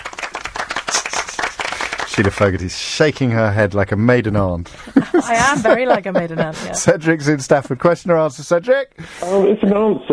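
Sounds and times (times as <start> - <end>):
applause of many hands clapping: 0.0 - 2.8
speech: 2.2 - 10.1
laughter: 4.7 - 7.8.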